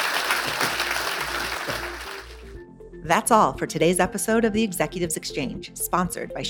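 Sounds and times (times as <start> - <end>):
audience applauding: 0.0 - 2.5
speech: 3.1 - 6.4.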